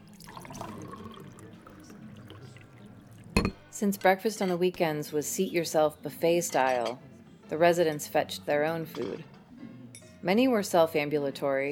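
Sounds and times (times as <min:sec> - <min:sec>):
coffee pouring into cups: 0:00.0 - 0:04.8
speech: 0:03.4 - 0:09.3, 0:10.2 - 0:11.7.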